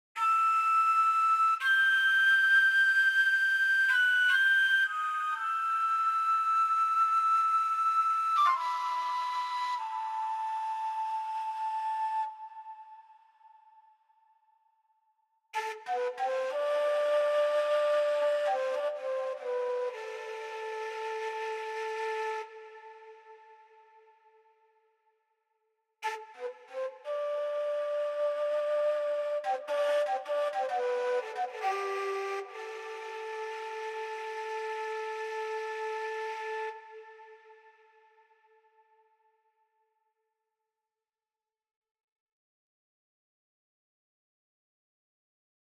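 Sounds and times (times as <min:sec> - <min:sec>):
desert flute melody: 0:00.2 - 0:14.1, 0:15.6 - 0:24.7, 0:26.0 - 0:38.6.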